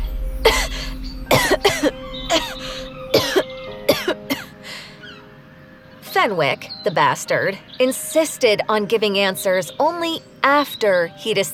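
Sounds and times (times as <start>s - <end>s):
coughing fit: 0.4s - 4.6s
strained breaths: 1.9s - 3.5s, 4.4s - 5.7s
speech: 6.2s - 11.5s.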